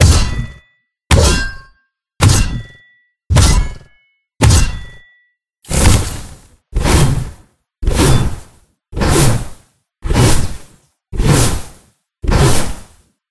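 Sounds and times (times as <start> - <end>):
pickaxe striking: 0.0 - 11.7.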